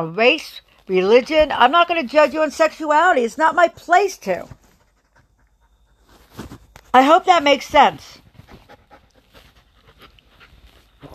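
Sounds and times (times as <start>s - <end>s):
speech: 0.0s - 4.6s, 6.9s - 8.2s
dogs panting while wrestling: 4.5s - 6.4s, 8.2s - 11.1s.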